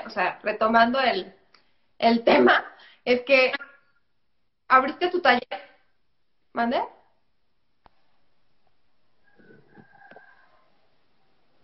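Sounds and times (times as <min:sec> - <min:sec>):
low hiss: 0:00.0 - 0:11.6
speech: 0:00.1 - 0:01.4, 0:02.0 - 0:03.7, 0:04.7 - 0:05.7, 0:06.6 - 0:07.0
faint rooster crowing: 0:09.2 - 0:11.0.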